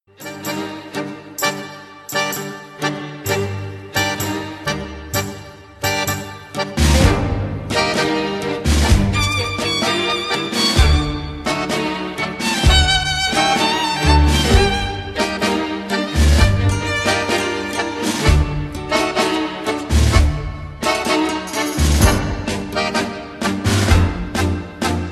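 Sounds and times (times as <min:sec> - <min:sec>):
Argentine tango ringtone: 0:00.2 - 0:25.1.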